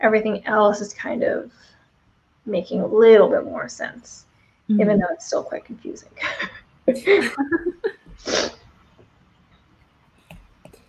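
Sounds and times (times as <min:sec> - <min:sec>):
speech: 0:00.0 - 0:01.7, 0:02.4 - 0:08.6
loud sniffing from a stuffy nose due to allergies: 0:08.2 - 0:08.7.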